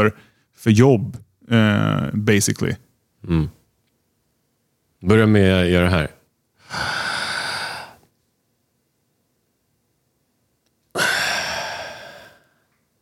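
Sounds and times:
speech: 0:00.0 - 0:03.6, 0:05.0 - 0:06.9
deep breaths in and out: 0:06.6 - 0:08.1, 0:11.0 - 0:12.8.

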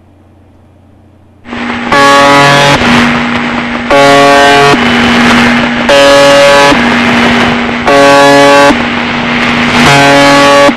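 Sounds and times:
harsh buzzing tone from a shortwave AM radio station: 0:01.5 - 0:10.7.

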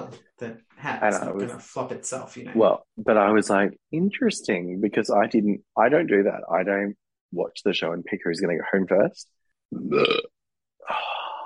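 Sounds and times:
speech: 0:00.4 - 0:11.1
burp: 0:09.7 - 0:10.4.

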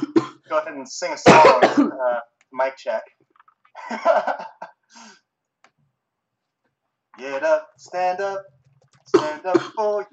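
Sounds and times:
speech: 0:00.5 - 0:03.2, 0:03.8 - 0:05.2, 0:07.2 - 0:10.1
person coughing: 0:01.2 - 0:02.0, 0:09.1 - 0:09.9
laughter: 0:03.8 - 0:04.9.

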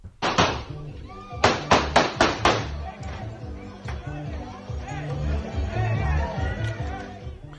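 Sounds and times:
gun fired into the air by a man to break up a fight: 0:00.2 - 0:00.8, 0:01.4 - 0:02.8
noisy crowd talking and shouting: 0:00.6 - 0:07.5.

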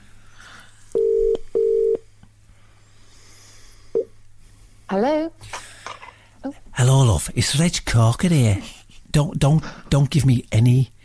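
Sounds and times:
telephone ringing tone on an outgoing call: 0:01.0 - 0:02.0
speech: 0:04.9 - 0:05.6, 0:06.4 - 0:11.0.

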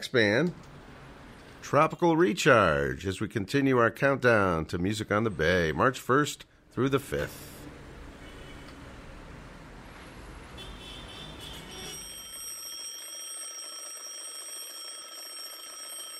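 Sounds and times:
speech: 0:00.0 - 0:00.7, 0:01.7 - 0:07.5
alarm clock ringing with a shrill continuous tone: 0:11.7 - 0:16.1.

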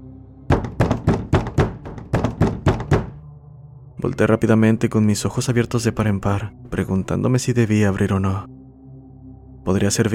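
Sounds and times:
knocking on the door of a room: 0:00.5 - 0:03.2
speech: 0:04.0 - 0:08.6, 0:09.6 - 0:10.1.

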